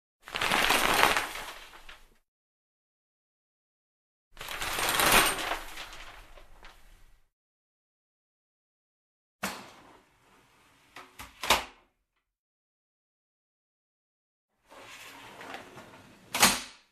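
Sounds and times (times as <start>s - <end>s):
shower curtain opening and closing: 0.2s - 2.2s, 4.4s - 7.2s, 14.6s - 16.6s.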